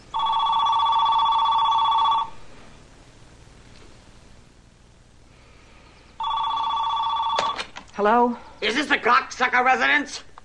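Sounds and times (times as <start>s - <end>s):
telephone ringing with a loud steady electronic trill: 0.1s - 2.4s, 6.2s - 7.8s
speech: 8.0s - 10.3s.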